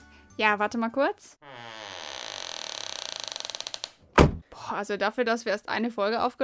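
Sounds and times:
speech: 0.4s - 1.5s, 4.7s - 6.4s
mobile library bus door creaking shut: 1.4s - 4.4s.

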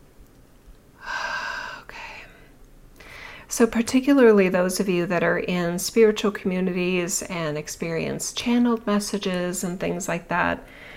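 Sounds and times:
deep breath taken during a guided breathing pause: 1.0s - 3.5s, 10.7s - 10.9s
speech: 3.6s - 10.8s.

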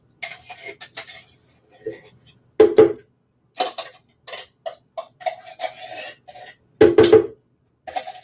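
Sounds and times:
utensil scraping and clinking against a blender container: 0.2s - 2.4s, 3.6s - 6.6s, 7.9s - 8.2s.

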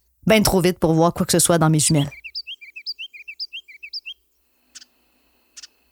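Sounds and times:
speech: 0.3s - 2.2s
ruby-crowned kinglet singing high bright chirps: 1.8s - 5.8s.

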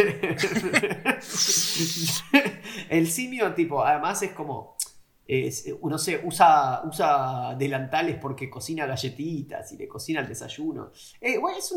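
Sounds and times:
speech: 0.0s - 11.7s
long airy sucking hiss as the mate gourd runs dry: 1.2s - 2.2s
wet gurgling slurps of mate drawn through a metal straw: 1.2s - 2.2s.

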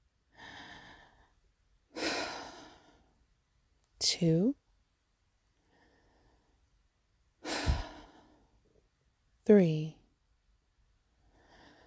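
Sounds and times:
slow quiet human breathing: 0.3s - 3.2s, 5.5s - 6.8s, 7.4s - 8.8s, 11.1s - 11.8s
speech: 4.0s - 4.6s, 9.5s - 10.0s.

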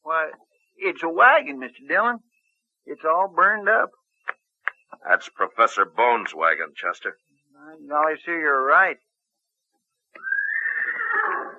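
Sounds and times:
speech: 0.2s - 2.3s, 2.9s - 4.0s, 5.0s - 9.0s
horse neighing: 10.2s - 11.5s.

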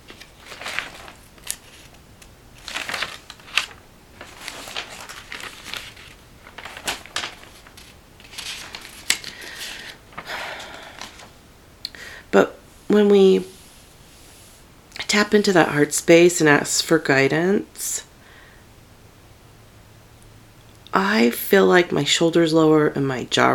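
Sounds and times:
notebook paper pages being flipped: 0.0s - 11.3s
speech: 12.4s - 13.5s, 15.1s - 18.1s, 21.2s - 23.5s.

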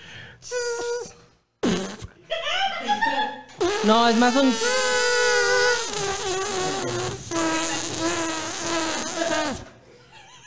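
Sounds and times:
mouth imitation of a fart: 0.5s - 2.2s, 3.6s - 9.8s
speech: 3.8s - 4.7s.

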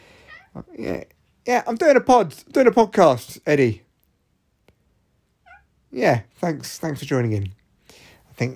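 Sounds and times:
cat meowing: 0.2s - 0.7s, 5.4s - 5.7s
speech: 0.6s - 3.8s, 5.9s - 7.6s, 8.4s - 8.5s.

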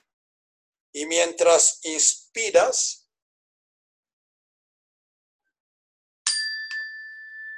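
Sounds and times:
speech: 1.0s - 3.0s
small meditation bell ringing: 6.2s - 7.5s.

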